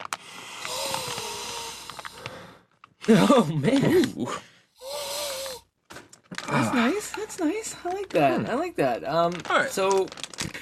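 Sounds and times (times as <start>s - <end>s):
two people sniffing cannabis buds through the nose: 0.2s - 2.6s, 4.8s - 5.6s
short snorts: 0.4s - 2.4s, 4.8s - 5.6s
speech: 3.1s - 4.5s, 6.6s - 10.5s.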